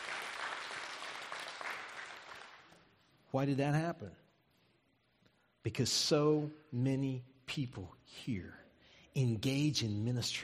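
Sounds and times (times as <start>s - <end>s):
congregation clapping and applauding: 0.0s - 2.9s
speech: 3.3s - 4.2s, 5.6s - 8.6s, 9.2s - 10.4s.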